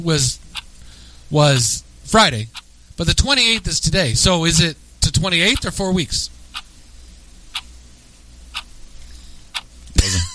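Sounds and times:
speech: 0:00.0 - 0:00.5, 0:01.3 - 0:06.4
clock ticking: 0:05.5 - 0:05.8.

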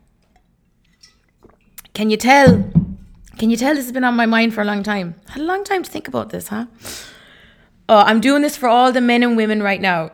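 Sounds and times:
person sipping and swallowing from a glass: 0:01.4 - 0:01.9
speech: 0:02.0 - 0:02.8, 0:03.4 - 0:07.2, 0:07.9 - 0:10.1.

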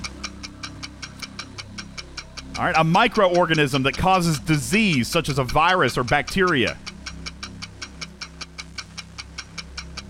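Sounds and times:
quiz countdown clock ticking: 0:00.0 - 0:10.0
speech: 0:02.6 - 0:06.9.

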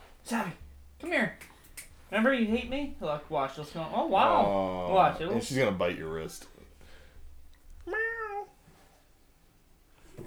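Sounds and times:
speech: 0:00.3 - 0:01.5, 0:02.1 - 0:06.5
cat meowing: 0:07.8 - 0:08.6.

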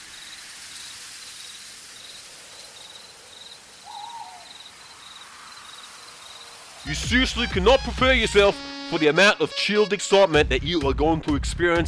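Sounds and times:
continuous high insect chirr: 0:00.0 - 0:06.9
soft rain falling through a forest: 0:00.0 - 0:06.9
short owl-like hoot: 0:03.8 - 0:04.6
speech: 0:06.8 - 0:11.8.

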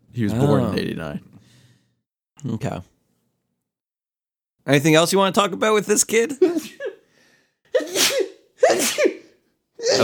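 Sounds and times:
speech: 0:00.2 - 0:01.3, 0:02.4 - 0:02.9, 0:04.6 - 0:06.8
man sneezing loudly: 0:07.7 - 0:10.0.

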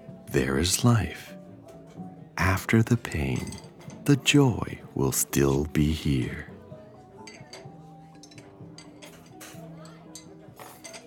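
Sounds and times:
soft jazz music in a cafe: 0:00.0 - 0:11.0
speech: 0:00.3 - 0:01.4, 0:02.4 - 0:06.5
dishes and cutlery clinking in a cafe: 0:01.6 - 0:06.3, 0:07.0 - 0:11.0
murmuring voices in a cafe: 0:02.4 - 0:06.6.

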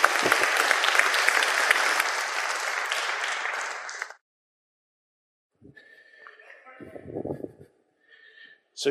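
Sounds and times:
crowd applauding: 0:00.0 - 0:04.2.

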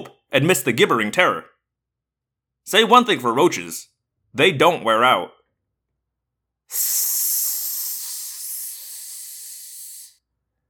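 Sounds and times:
speech: 0:00.4 - 0:01.5, 0:02.6 - 0:05.4, 0:06.7 - 0:07.3
loud sustained hiss: 0:06.7 - 0:10.2.

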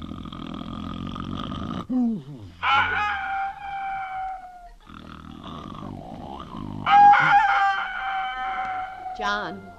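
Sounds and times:
low rumbling snoring: 0:00.0 - 0:02.7, 0:04.8 - 0:07.3
rooster crowing in the morning: 0:02.6 - 0:04.8, 0:06.8 - 0:09.7.

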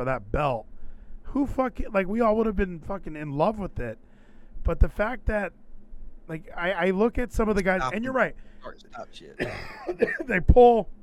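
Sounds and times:
speech: 0:00.0 - 0:00.7, 0:01.3 - 0:05.6, 0:06.3 - 0:11.0
person coughing: 0:09.4 - 0:10.4.

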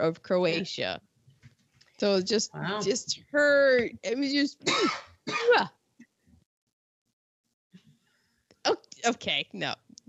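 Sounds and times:
speech: 0:00.0 - 0:01.1, 0:02.0 - 0:05.8, 0:08.7 - 0:09.8
woman giving a loud rasping throat clear: 0:04.6 - 0:05.7.

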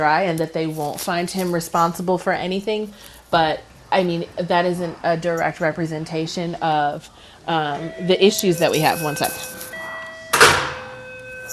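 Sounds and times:
speech: 0:00.0 - 0:09.7
door opening: 0:09.0 - 0:11.0.

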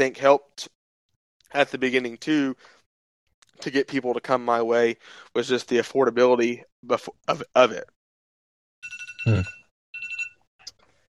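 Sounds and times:
speech: 0:00.0 - 0:00.8, 0:01.5 - 0:02.8, 0:03.6 - 0:08.0, 0:08.8 - 0:09.6
electronic phone ringtone chirping in trilling bursts: 0:08.8 - 0:10.4.

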